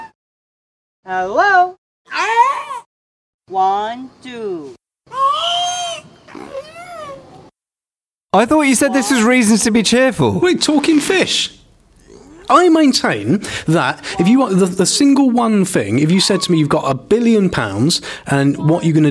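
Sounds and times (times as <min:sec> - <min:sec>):
speech: 0:01.1 - 0:02.4, 0:03.5 - 0:04.8, 0:08.3 - 0:11.6, 0:12.5 - 0:19.0
orca in America mimicking human words: 0:08.3 - 0:19.0.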